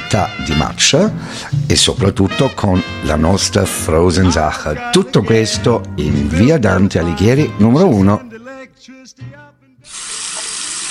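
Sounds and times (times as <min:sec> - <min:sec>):
speech: 0:00.1 - 0:09.0
running tap water gushing into a sink: 0:09.9 - 0:10.9.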